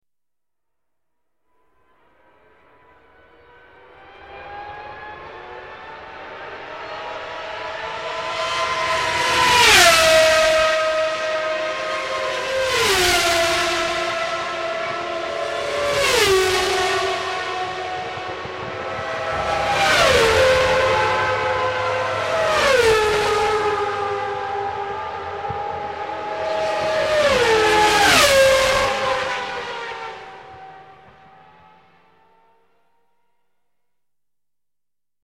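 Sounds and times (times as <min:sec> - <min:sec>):
Formula 1 and Formula 3000 racing cars: 0:01.5 - 0:33.6.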